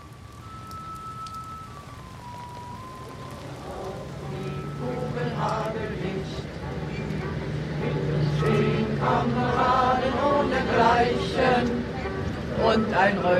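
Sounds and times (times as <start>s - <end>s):
rain pattering on umbrellas: 0.0s - 13.3s
murmuring voices: 3.6s - 13.3s.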